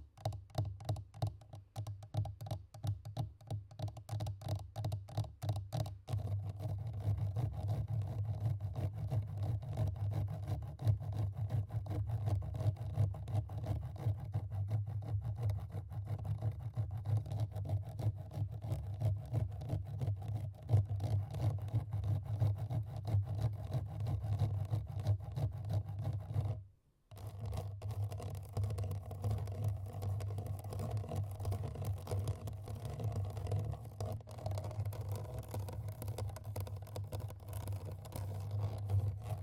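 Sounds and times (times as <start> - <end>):
fast aggressive tapping on a microphone: 0.0 - 8.7, 9.3 - 39.4
continuous rough scraping on a microphone: 21.3 - 39.4.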